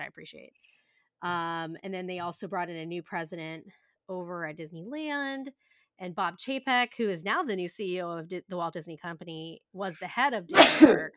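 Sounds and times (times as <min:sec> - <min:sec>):
speech: 0:00.1 - 0:11.1
person sneezing loudly and breathily: 0:10.5 - 0:11.1.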